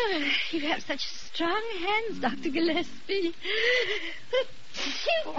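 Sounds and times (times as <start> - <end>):
speech: 0.2 - 5.3
person sneezing: 4.7 - 5.3.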